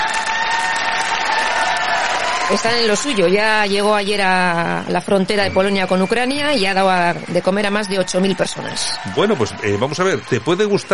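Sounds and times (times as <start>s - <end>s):
crowd applauding: 0.0s - 10.9s
speech: 2.5s - 10.9s.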